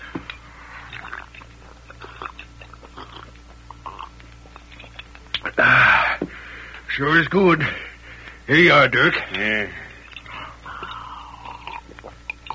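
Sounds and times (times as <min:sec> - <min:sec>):
person gulping and swallowing water: 0:00.2 - 0:05.8, 0:10.0 - 0:12.5
speech: 0:07.0 - 0:07.8, 0:08.5 - 0:09.8.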